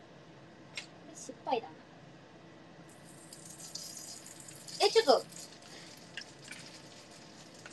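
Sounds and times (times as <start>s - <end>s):
speech: 1.5s - 1.9s, 4.8s - 5.4s
food frying and sticking in a pan: 2.9s - 7.7s
frying pops: 2.9s - 7.7s.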